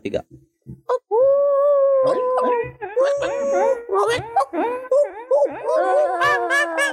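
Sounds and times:
speech: 0.0s - 0.4s
several people imitating dogs howling: 0.9s - 6.9s
people imitating dogs with short barking bursts: 2.1s - 6.9s.

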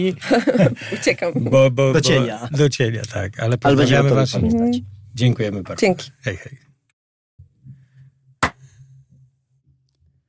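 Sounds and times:
speech: 0.0s - 6.6s
laughter: 0.2s - 1.0s
hand slap: 8.4s - 8.6s.

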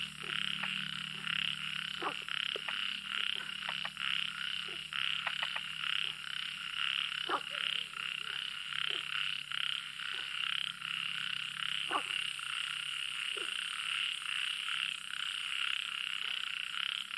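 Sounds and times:
chorus of frogs and insects trilling on a summer night after a thunderstorm: 0.0s - 17.1s
sharp croaks and clicks: 0.0s - 17.1s.

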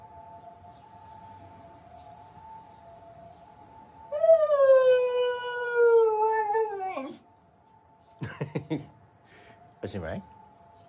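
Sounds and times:
Hokkaido dog howling on the Toyohira River riverbank: 4.1s - 7.2s
laughter: 8.2s - 8.9s
speech: 8.6s - 9.0s, 9.8s - 10.4s.

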